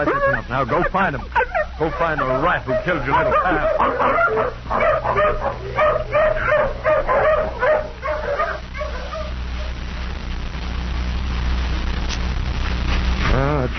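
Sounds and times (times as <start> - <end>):
speech: 0.0 - 7.6
hound dog barking and whimpering while sniffing a shirt for a scent: 0.0 - 9.8
low rumble: 0.0 - 13.7.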